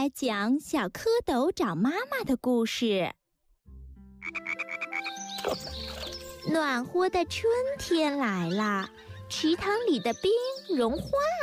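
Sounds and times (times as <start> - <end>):
speech: 0.0 - 3.2, 5.4 - 5.8, 6.5 - 11.4
frog croaking: 4.2 - 6.0.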